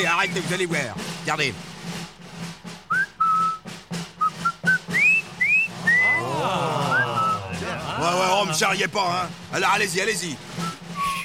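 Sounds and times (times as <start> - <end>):
speech: 0.0 - 1.7, 8.1 - 10.5
person whistling a halting tune: 2.9 - 7.6, 10.6 - 11.2
laughter: 5.3 - 9.1.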